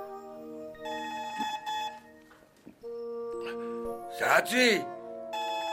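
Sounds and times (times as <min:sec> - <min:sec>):
telephone playing a melodic electronic ringtone: 0:00.5 - 0:04.1, 0:05.3 - 0:05.7
speech: 0:04.4 - 0:04.9.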